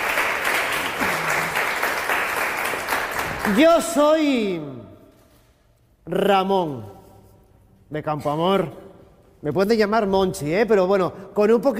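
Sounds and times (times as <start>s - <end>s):
theatre audience applause: 0.0s - 3.6s
speech: 3.5s - 4.8s, 6.1s - 7.0s, 7.9s - 8.8s, 9.4s - 11.7s.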